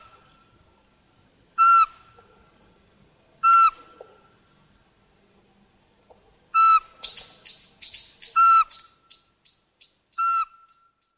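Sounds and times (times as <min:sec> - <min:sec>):
Eurasian pygmy owl piping whistles: 0:03.4 - 0:03.8, 0:06.6 - 0:11.1.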